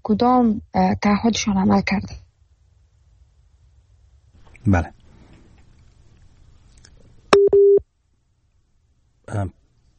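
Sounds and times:
speech: 0.0s - 2.2s, 4.6s - 5.0s, 9.3s - 9.6s
telephone busy tone after a dropped call: 7.4s - 7.8s.

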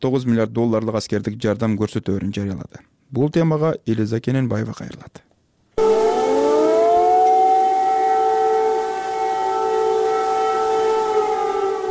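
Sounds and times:
speech: 0.0s - 5.9s
air raid sirens warning of a missile threat in Kyiv: 5.8s - 11.8s.

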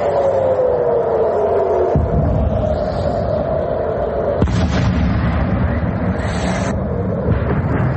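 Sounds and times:
falling whine: 0.0s - 7.9s
rumbling explosions from rocket interception: 1.9s - 3.5s, 4.3s - 7.9s.

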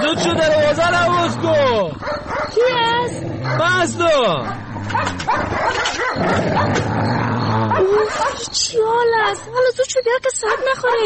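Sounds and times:
continuous noise: 0.0s - 11.0s
speech: 0.1s - 11.0s
dog barking and yelping: 0.4s - 11.0s.

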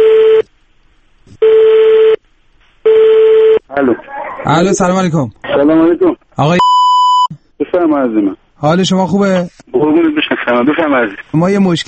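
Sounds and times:
ringing tone of an outgoing telephone call: 0.0s - 0.4s, 1.4s - 2.2s, 2.9s - 3.6s
speech: 4.5s - 6.6s, 7.8s - 11.8s.

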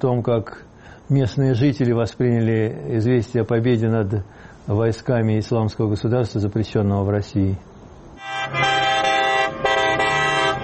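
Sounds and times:
speech: 0.0s - 7.7s
many car horns honking in celebration: 8.2s - 10.6s.

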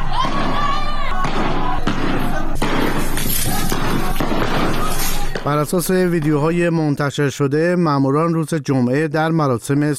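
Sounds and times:
crowd shouting outdoors: 0.0s - 5.9s
gunshots fired by security forces: 0.0s - 6.6s
speech: 5.5s - 9.9s.

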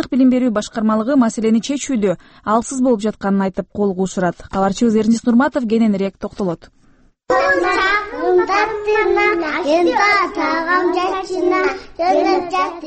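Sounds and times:
speech: 0.0s - 12.8s
young kindergarten children singing together in unison: 7.3s - 12.8s.

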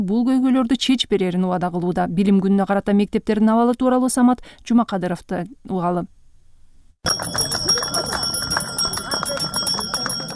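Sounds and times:
speech: 0.0s - 6.2s, 7.0s - 7.8s
school handbell ringing for the first day of school: 7.1s - 10.3s.

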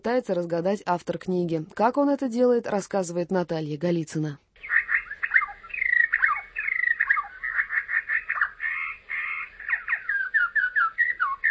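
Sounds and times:
speech: 0.0s - 4.8s
bird singing whistled phrases and trills: 4.6s - 11.4s.

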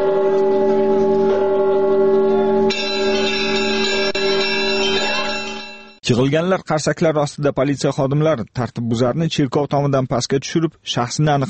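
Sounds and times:
church bells ringing from a church tower: 0.0s - 6.0s
speech: 6.1s - 11.4s.

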